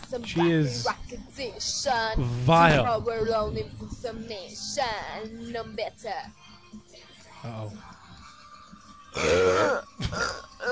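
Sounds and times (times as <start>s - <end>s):
speech: 0.1s - 8.0s, 9.2s - 10.7s
forced croaky burp attempt: 9.1s - 10.7s
guttural throat noises: 9.1s - 10.7s.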